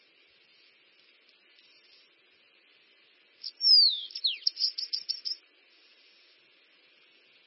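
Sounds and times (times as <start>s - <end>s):
bananaquit song with slurred whistle and sizzling chips: 3.4s - 5.4s.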